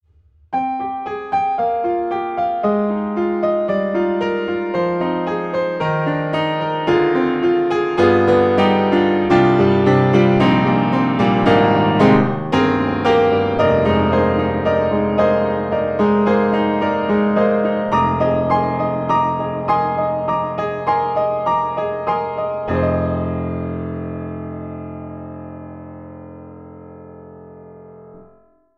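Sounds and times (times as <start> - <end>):
worn out piano: 0.5 - 28.7.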